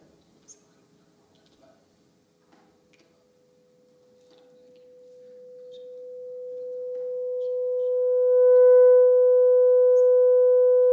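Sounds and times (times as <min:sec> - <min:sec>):
pure test tone for matching listening volume: 0:04.8 - 0:10.9.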